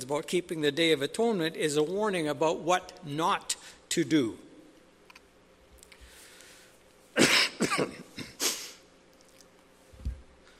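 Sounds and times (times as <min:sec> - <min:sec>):
speech: 0:00.1 - 0:04.4, 0:07.8 - 0:08.0
person coughing: 0:07.2 - 0:08.8.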